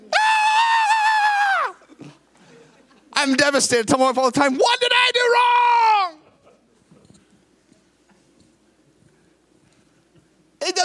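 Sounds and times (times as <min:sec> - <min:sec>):
person imitating a child's shrill scream: 0:00.0 - 0:01.8, 0:05.0 - 0:06.2
speech: 0:03.2 - 0:05.9.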